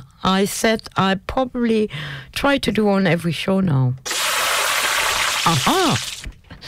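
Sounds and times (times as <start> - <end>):
speech: 0.2 - 4.1, 5.4 - 6.6
food frying in a hot pan: 4.1 - 6.2.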